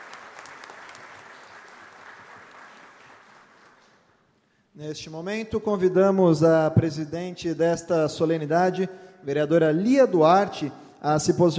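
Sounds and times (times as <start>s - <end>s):
audience clapping for a band: 0.0s - 4.3s
speech: 4.8s - 11.5s.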